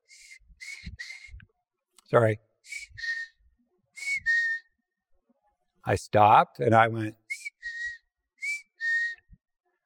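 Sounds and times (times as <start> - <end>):
person whistling an imitation of a bird call: 0.0 - 1.5, 2.7 - 3.4, 4.0 - 4.8, 7.3 - 9.4
speech: 2.1 - 2.5, 5.9 - 7.2.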